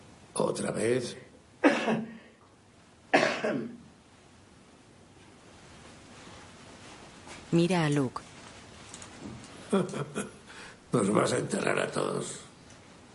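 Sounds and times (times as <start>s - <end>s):
quiet hiss: 0.0s - 13.1s
speech: 0.6s - 2.1s, 3.4s - 3.8s, 7.5s - 8.3s, 9.7s - 12.5s
emaciated man coughing harshly: 1.6s - 2.3s, 3.1s - 3.8s
laughter: 9.7s - 10.4s.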